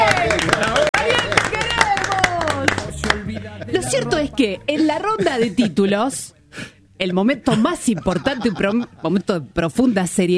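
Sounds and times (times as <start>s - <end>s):
small group clapping enthusiastically: 0.0s - 3.5s
voices cheering and chattering: 0.0s - 5.5s
laughter: 0.0s - 6.1s, 7.5s - 9.4s
speech: 4.4s - 10.3s.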